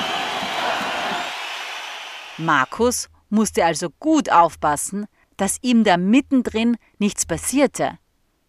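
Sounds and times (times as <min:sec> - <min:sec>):
large arena crowd cheering and shouting: 0:00.0 - 0:02.7
speech: 0:02.4 - 0:08.0.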